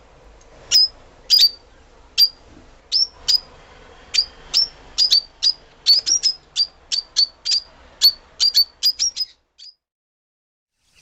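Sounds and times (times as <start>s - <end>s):
Fischer's lovebird Agapornis fischeri giving sharp shrill chirps: 0.7s - 3.5s, 4.1s - 9.8s.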